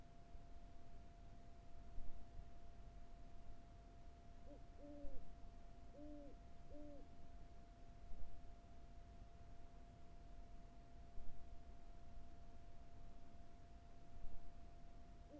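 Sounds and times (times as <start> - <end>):
faint constant tone: 0.0 - 15.3
owl hooting on the Carrizo Plain: 4.4 - 5.2, 5.9 - 7.1.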